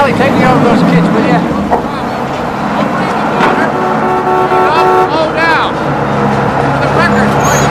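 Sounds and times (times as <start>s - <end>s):
boat engine rumbling as a barge arrives: 0.0s - 7.6s
boat horn: 3.4s - 5.4s.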